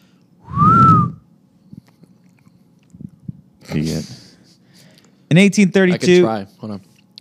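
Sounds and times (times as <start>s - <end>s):
person whistling a swooping note imitating a swoosh: 0.4s - 1.2s
speech: 3.7s - 4.2s, 5.3s - 6.9s.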